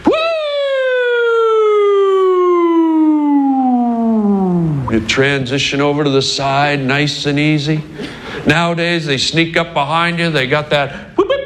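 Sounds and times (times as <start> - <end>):
voice imitating an old gentle police car siren: 0.0 - 5.1
speech: 5.0 - 11.1.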